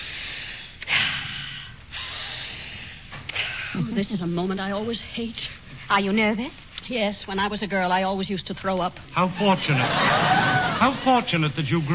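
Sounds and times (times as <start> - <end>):
person taking deep breaths of fresh air: 0.0 - 3.9
speech: 3.8 - 11.9
laughter: 9.5 - 11.4.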